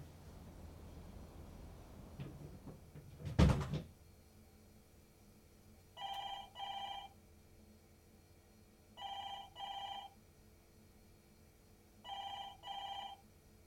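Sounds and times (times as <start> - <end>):
low hum: 0.0 - 13.6
telephone ringing with double electronic trill: 6.0 - 7.2, 9.0 - 10.2, 12.0 - 13.3.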